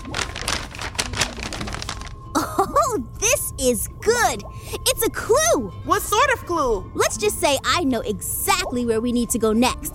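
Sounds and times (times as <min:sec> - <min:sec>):
folded piece of paper from an old sealed box crinkling as it is unfolded: 0:00.0 - 0:02.5
speech: 0:03.6 - 0:09.9.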